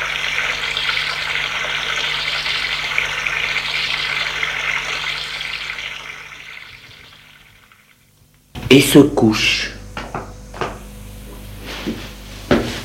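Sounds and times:
shower water spraying: 0.0 - 8.2
speech: 8.7 - 9.7.

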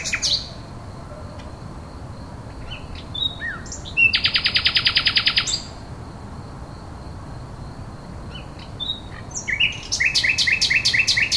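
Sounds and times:
common nightingale song: 0.0 - 6.0, 8.2 - 11.3.

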